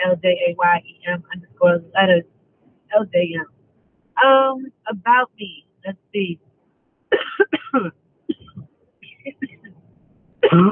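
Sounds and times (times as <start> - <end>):
speech: 0.0 - 2.3, 2.9 - 3.5, 4.2 - 6.4, 7.1 - 8.0, 10.4 - 10.6
person coughing: 7.1 - 8.6, 10.4 - 10.6
throat clearing: 7.2 - 8.6, 10.4 - 10.6.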